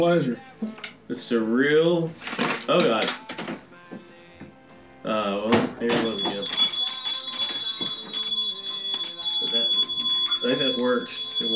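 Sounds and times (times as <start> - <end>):
speech: 0.0 - 3.3, 10.4 - 11.5
loud bell ringing: 5.9 - 11.5.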